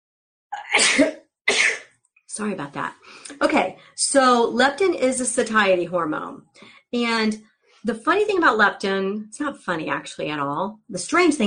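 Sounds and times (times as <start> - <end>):
loud sneeze: 0.6 - 1.9
speech: 0.8 - 1.2, 2.4 - 11.4.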